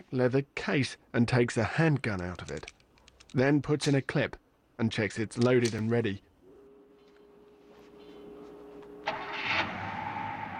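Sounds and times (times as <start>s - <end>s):
speech: 0.1s - 6.3s
car engine cranking and starting: 8.8s - 10.5s.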